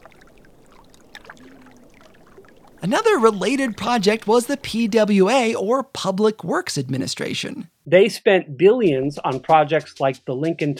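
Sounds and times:
water lapping and trickling: 0:00.0 - 0:05.9
speech: 0:02.8 - 0:10.7.

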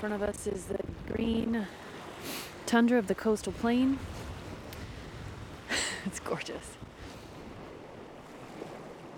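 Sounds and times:
speech: 0:00.0 - 0:04.2, 0:06.0 - 0:06.9
blustery wind on a gravelly beach: 0:00.0 - 0:09.1
surf washing on a gravelly beach shoreline: 0:00.0 - 0:09.1.

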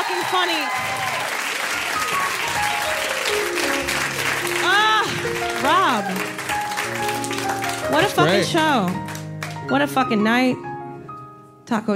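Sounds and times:
scattered cheers and whistles: 0:00.0 - 0:02.6
audience applauding: 0:00.0 - 0:09.9
speech: 0:00.3 - 0:01.0, 0:08.0 - 0:09.1, 0:09.7 - 0:10.7, 0:11.7 - 0:11.9.

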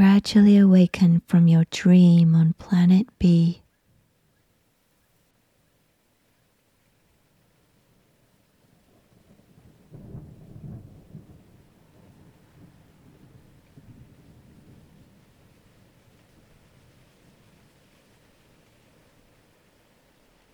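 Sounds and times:
speech: 0:00.2 - 0:03.6
steady rain-like hiss: 0:03.2 - 0:20.5
distant rolling thunder: 0:08.9 - 0:16.9.

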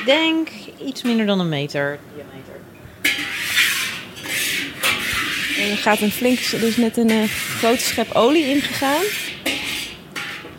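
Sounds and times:
speech: 0:00.0 - 0:02.8, 0:05.6 - 0:09.6
faint metallic scraping: 0:03.0 - 0:10.5
large wok burner roaring under a wok: 0:03.0 - 0:10.5.

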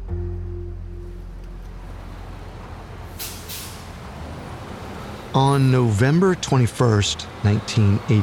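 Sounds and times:
large school bus engine rumbling on a cold day: 0:00.0 - 0:08.2
school bus air brakes hissing: 0:03.1 - 0:04.2
speech: 0:05.4 - 0:08.2.

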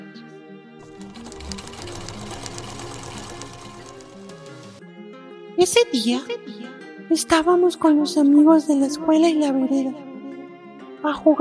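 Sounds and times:
sewing machine sewing dresses: 0:00.8 - 0:04.8
speech: 0:05.6 - 0:10.0, 0:11.0 - 0:11.3.

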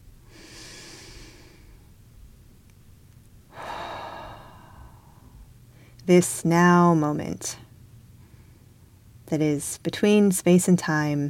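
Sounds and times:
slow deep breath during a guided calming practice: 0:00.3 - 0:01.9, 0:03.5 - 0:06.0
speech: 0:06.1 - 0:07.7, 0:09.3 - 0:11.2.

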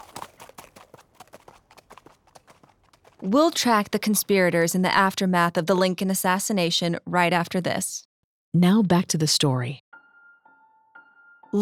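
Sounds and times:
horse hooves galloping away: 0:00.0 - 0:04.4
speech: 0:03.2 - 0:09.8.

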